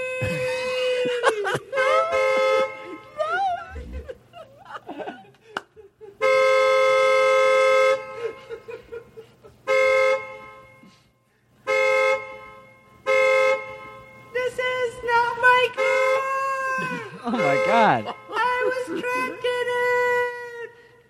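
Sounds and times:
laughter: 0.2 - 6.2, 8.1 - 9.7, 16.7 - 19.7
car horn honking: 1.5 - 3.4, 6.2 - 20.5.

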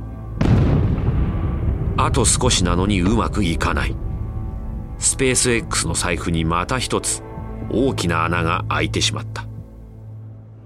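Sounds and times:
rocket exploding: 0.4 - 5.6
low rumble: 0.4 - 7.8
speech: 2.0 - 4.0, 5.0 - 9.5.

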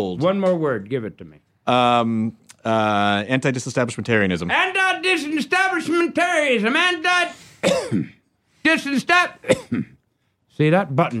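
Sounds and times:
speech: 0.0 - 9.9, 10.6 - 11.1
rough throat-clearing cough: 7.6 - 8.3, 9.4 - 10.0.

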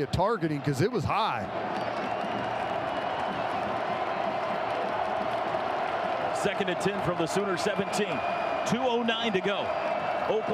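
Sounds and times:
speech: 0.0 - 2.6, 6.4 - 10.5
huge football stadium crowd of fans roaring: 0.0 - 10.5.

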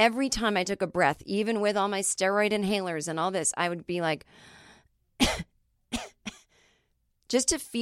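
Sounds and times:
speech: 0.0 - 4.6, 5.2 - 6.2, 7.3 - 7.7
quick dry coughs from someone whose lungs are not breathing well: 5.2 - 6.5.

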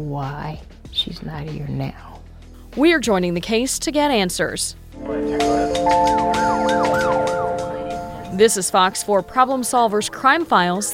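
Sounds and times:
speech: 0.0 - 7.2, 8.3 - 10.9
emergency vehicle sirens wailing in a Kansas City neighborhood: 5.0 - 9.5.

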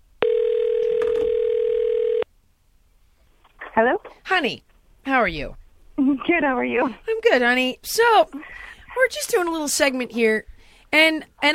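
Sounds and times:
telephone dial tone for an outgoing call: 0.2 - 2.2
speech: 3.8 - 11.5.

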